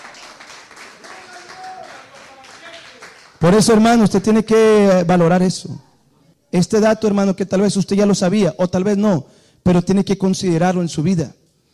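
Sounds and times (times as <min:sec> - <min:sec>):
audience clapping hands rhythmically in praise: 0:00.0 - 0:04.2
speech: 0:03.5 - 0:05.9, 0:06.5 - 0:11.4.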